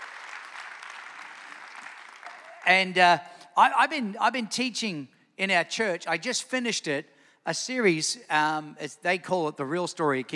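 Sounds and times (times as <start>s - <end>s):
church audience clapping at the end of a sermon series: 0.0s - 3.0s
speech: 2.7s - 10.3s.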